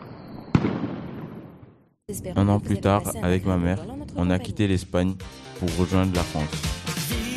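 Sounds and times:
firecracker bang: 0.0s - 1.9s
speech: 2.1s - 7.2s.

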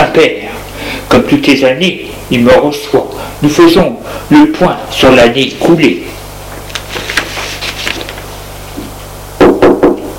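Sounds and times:
faint steady hum: 0.0s - 10.1s
speech: 0.2s - 0.4s, 1.1s - 6.2s
knocking on a door: 9.4s - 10.1s.

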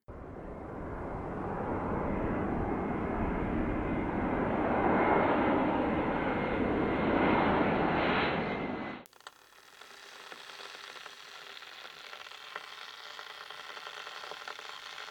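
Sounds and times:
airplane flying overhead: 0.1s - 9.1s.

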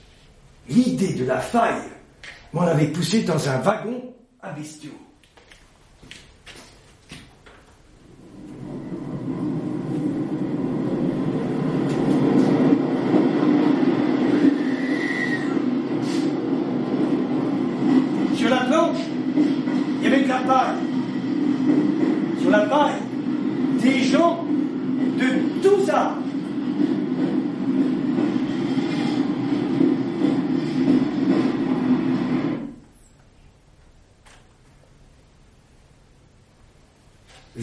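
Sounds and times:
speech: 0.7s - 5.1s
train rolling on rails: 7.8s - 33.1s.

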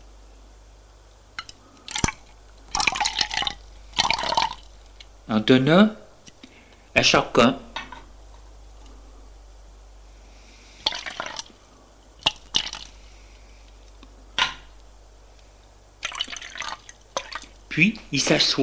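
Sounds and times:
liquid poured from a bottle into glasses: 1.4s - 4.7s, 10.8s - 11.5s, 16.0s - 17.5s
speech: 5.3s - 6.0s, 7.0s - 7.6s, 17.8s - 18.6s.

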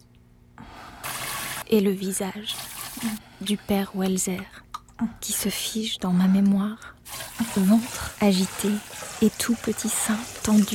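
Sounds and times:
jet of water running into a bathtub: 1.0s - 1.7s, 2.3s - 3.2s, 7.0s - 10.7s
speech: 1.7s - 10.7s.

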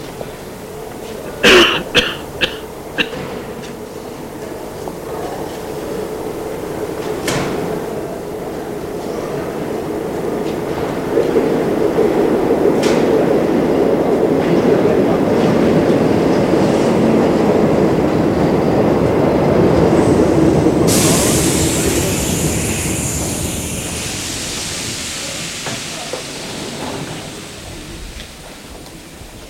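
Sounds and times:
metro train rumbling into a station: 0.0s - 29.4s
sharp hiss of metro train brakes or doors: 20.7s - 29.3s.

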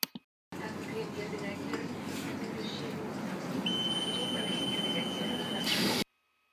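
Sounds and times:
train and platform rumble: 0.6s - 5.6s
metro doors closing: 2.4s - 6.0s
high-pitched door warning tone: 3.6s - 6.0s.

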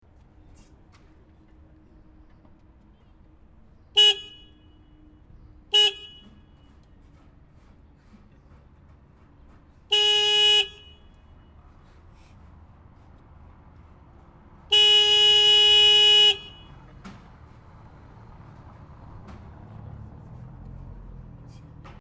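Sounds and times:
street cleaning truck horn: 4.0s - 5.1s, 5.7s - 6.8s, 9.9s - 11.4s, 14.7s - 17.0s.

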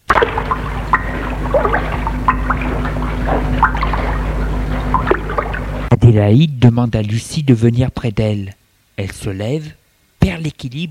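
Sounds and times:
oars rowing a long rowboat through water: 0.0s - 5.9s
low steady hum: 0.0s - 10.8s
speech: 6.1s - 10.8s.

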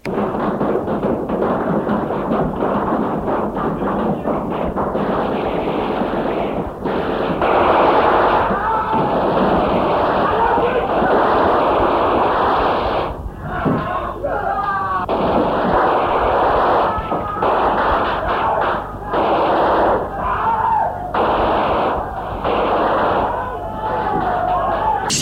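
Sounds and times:
loud chaotic burst of gunfire: 0.0s - 13.9s, 15.1s - 24.4s
people shouting or screaming: 7.4s - 25.1s.

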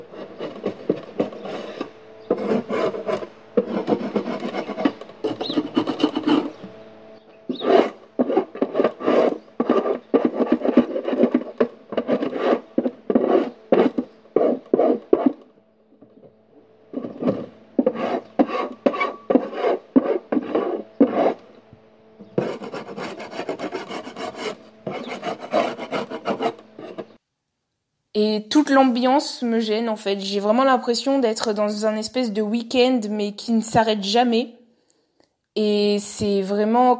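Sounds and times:
wooden beehives and nucleus hive boxes scraped clean: 0.0s - 27.2s
speech: 28.3s - 34.6s, 35.6s - 36.9s.

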